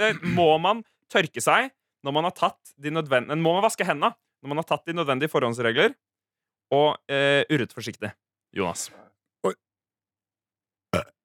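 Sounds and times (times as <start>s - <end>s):
short throaty burps: 0.0s - 0.5s, 10.9s - 11.2s
speech: 0.0s - 6.1s, 6.7s - 9.7s, 10.9s - 11.2s.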